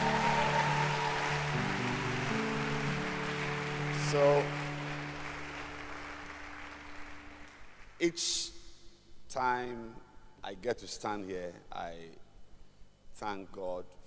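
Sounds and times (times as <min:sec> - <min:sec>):
crowd clapping: 0:00.0 - 0:08.0
sustained music tones: 0:00.0 - 0:08.0
speech: 0:04.1 - 0:04.6, 0:08.0 - 0:08.5, 0:09.3 - 0:12.2, 0:13.2 - 0:14.0.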